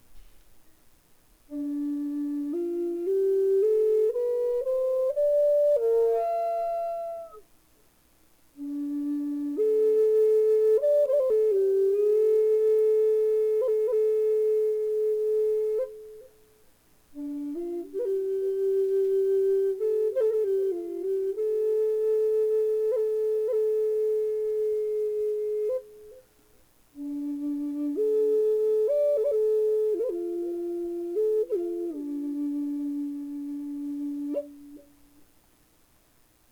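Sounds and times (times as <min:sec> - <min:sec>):
flutes playing: 0:01.5 - 0:07.5, 0:08.6 - 0:16.5, 0:17.1 - 0:26.3, 0:27.0 - 0:35.1.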